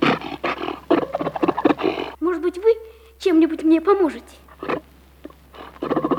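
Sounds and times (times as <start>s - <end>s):
fur seals barking in a cackling chorus: 0.0s - 2.2s, 4.4s - 6.1s
speech: 3.2s - 4.8s.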